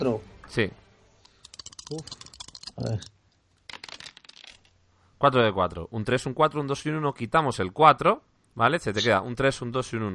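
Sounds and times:
speech: 0.0s - 0.8s, 1.9s - 2.2s, 2.8s - 3.2s, 5.2s - 10.1s
four-sided dice rattling onto a hard surface: 1.4s - 4.7s.

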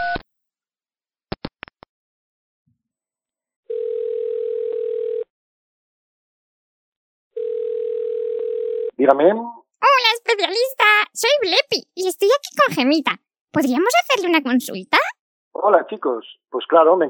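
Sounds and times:
phone tone: 3.7s - 5.3s, 7.4s - 8.9s
speech: 9.0s - 9.5s, 10.2s - 17.0s.

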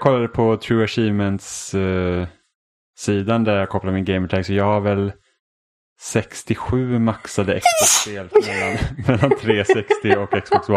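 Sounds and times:
speech: 0.0s - 2.4s, 3.0s - 5.2s, 6.0s - 10.7s
sharp sneeze: 7.6s - 8.2s
man laughing: 7.6s - 10.7s.

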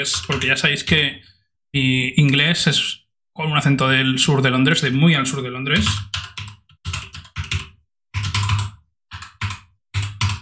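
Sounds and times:
speech: 0.0s - 6.5s
typing on a computer keyboard: 0.1s - 0.6s, 5.8s - 10.4s.

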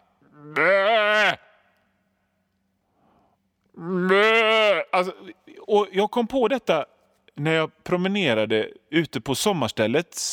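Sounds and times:
person imitating sheep bleating: 0.3s - 1.6s, 3.8s - 5.2s
speech: 5.0s - 10.3s.

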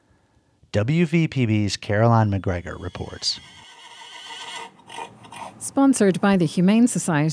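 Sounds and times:
speech: 0.7s - 3.6s, 5.7s - 7.3s
rescue horse whinnying in a long quavering neigh: 2.3s - 5.6s.

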